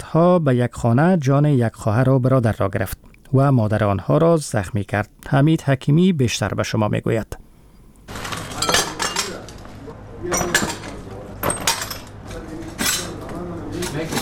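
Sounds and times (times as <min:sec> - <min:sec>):
low hum: 0:00.0 - 0:14.1
speech: 0:00.1 - 0:07.4
broken glass shards being gathered up in a rocket-damaged house in Kabul: 0:08.2 - 0:09.6, 0:10.3 - 0:12.1.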